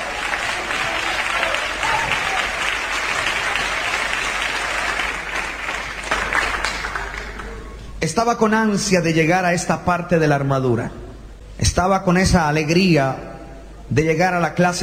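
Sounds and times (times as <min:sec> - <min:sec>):
congregation applauding: 0:00.0 - 0:07.8
speech: 0:08.0 - 0:11.0, 0:11.6 - 0:13.3, 0:13.9 - 0:14.8.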